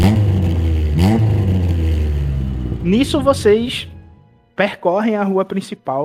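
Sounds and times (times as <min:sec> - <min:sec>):
car engine revving hard as the vehicle pulls away: 0:00.0 - 0:04.5
speech: 0:02.9 - 0:03.9, 0:04.6 - 0:06.0.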